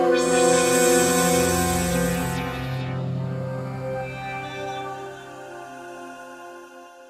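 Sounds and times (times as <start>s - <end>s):
Roland JV-2080 synthesizer sound: 0.2s - 5.3s.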